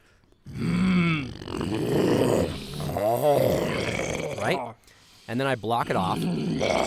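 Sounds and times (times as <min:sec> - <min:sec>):
person making a low throaty growl: 0:00.4 - 0:04.8, 0:05.8 - 0:06.8
speech: 0:05.3 - 0:06.8.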